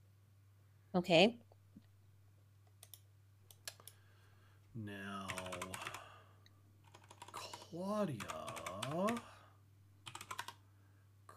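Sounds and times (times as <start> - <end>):
speech: 0.9 - 1.4, 4.8 - 5.2, 7.7 - 9.3
typing on a computer keyboard: 5.3 - 6.0, 6.9 - 7.6, 8.2 - 9.3, 10.0 - 10.6.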